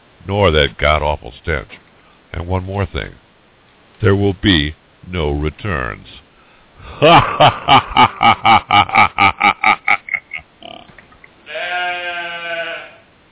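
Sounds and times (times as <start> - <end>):
speech: 0.2 - 3.2, 4.0 - 6.2, 7.0 - 9.3
rapid staccato cackling laugh: 6.8 - 10.9
sheep bleating: 10.6 - 13.1.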